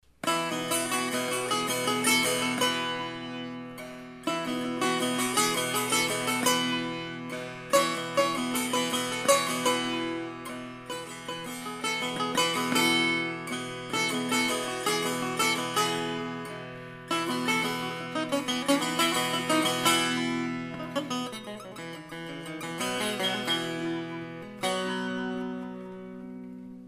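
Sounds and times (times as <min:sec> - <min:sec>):
Persian setar of walnut wood: 0:00.0 - 0:26.8.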